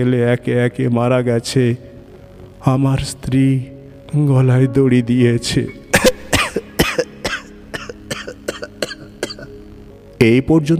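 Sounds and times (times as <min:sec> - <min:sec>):
speech: 0:00.0 - 0:01.9, 0:02.6 - 0:05.8, 0:10.2 - 0:10.7
man with lung cancer coughing heavily: 0:06.0 - 0:09.6.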